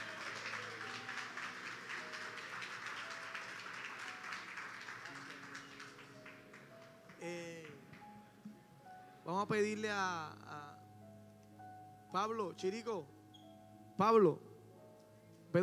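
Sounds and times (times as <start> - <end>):
crowd clapping: 0.0 - 8.0
speech: 7.2 - 7.6, 9.3 - 10.5, 12.1 - 13.2, 14.0 - 14.5.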